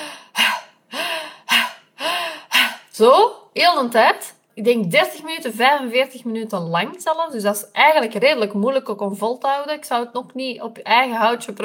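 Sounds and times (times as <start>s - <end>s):
voice imitating rapid breathing in and out through the mouth: 0.0s - 3.0s
speech: 3.0s - 11.6s.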